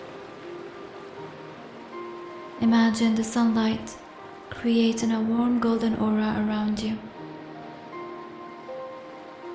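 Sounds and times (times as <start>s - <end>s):
ocean waves: 0.0s - 9.5s
speech: 2.6s - 7.1s.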